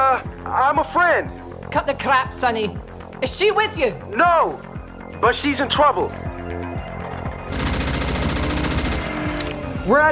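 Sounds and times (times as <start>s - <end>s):
speech: 0.5s - 6.6s, 9.9s - 10.1s
rapid automatic gunfire: 7.5s - 9.7s.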